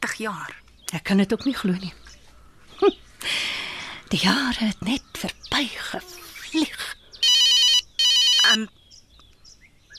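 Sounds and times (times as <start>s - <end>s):
speech: 0.1s - 2.2s, 2.8s - 3.5s, 4.1s - 7.0s, 8.5s - 8.8s
faint chirps: 2.0s - 9.9s
telephone ringing: 7.2s - 8.6s.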